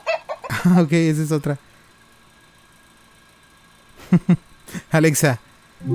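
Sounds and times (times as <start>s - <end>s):
hen clucking sound effect played from a speaker: 0.0s - 0.5s
person laughing: 0.4s - 0.9s, 4.0s - 4.9s
speech: 0.6s - 1.7s, 4.1s - 5.9s.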